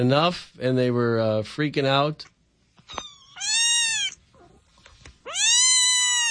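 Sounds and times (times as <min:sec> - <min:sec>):
speech: 0:00.0 - 0:02.3, 0:02.9 - 0:03.5
cat meowing: 0:02.9 - 0:04.6, 0:05.2 - 0:06.2.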